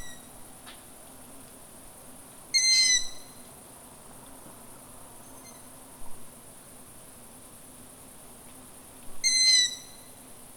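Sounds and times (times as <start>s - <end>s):
long-eared owl squeaky calls: 2.6s - 3.2s, 9.2s - 10.0s.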